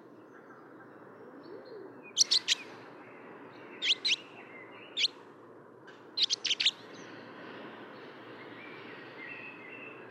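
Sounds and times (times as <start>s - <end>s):
barn swallow chirping: 2.2s - 2.6s, 3.8s - 4.2s, 6.2s - 6.7s.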